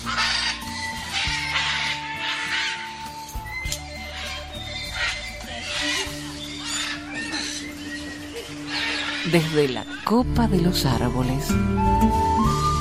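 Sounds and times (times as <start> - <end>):
flock of parrots squawking from the treetops: 0.0 - 10.0
speech: 9.3 - 12.7.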